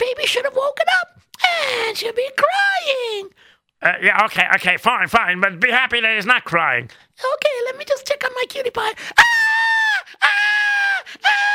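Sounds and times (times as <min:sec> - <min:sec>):
speech: 0:00.0 - 0:01.1, 0:01.9 - 0:10.5
woman screaming: 0:09.2 - 0:11.5.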